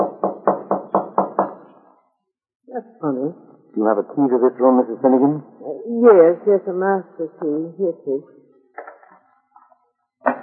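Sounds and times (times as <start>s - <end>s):
knocking on a wooden room door: 0.0s - 1.6s
speech: 3.0s - 8.4s.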